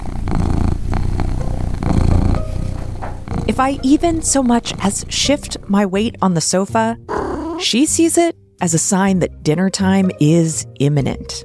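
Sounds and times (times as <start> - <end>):
female house cat purring loudly: 0.0 - 6.1, 7.1 - 7.7
speech: 3.5 - 11.4.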